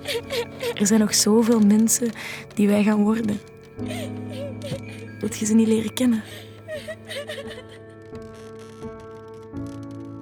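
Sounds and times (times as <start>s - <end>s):
eight-year-old girl whimpering and sobbing: 0.0s - 1.1s, 3.8s - 7.9s
speech: 0.0s - 7.5s
steady low musical background: 0.0s - 10.2s.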